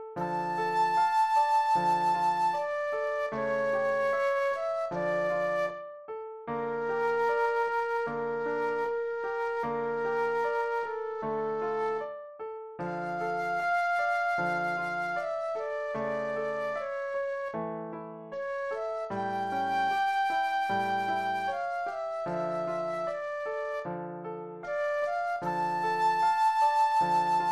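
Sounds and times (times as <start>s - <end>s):
classical aria flute solo: 0.2s - 6.0s, 6.5s - 12.1s, 12.8s - 17.7s, 18.3s - 24.1s, 24.6s - 27.5s.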